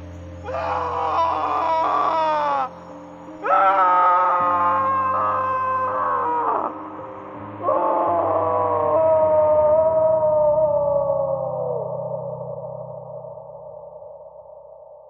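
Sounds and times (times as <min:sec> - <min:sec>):
steady low drone: 0:00.0 - 0:15.0
long anguished wails with wavering pitch: 0:00.4 - 0:02.7, 0:03.4 - 0:13.1.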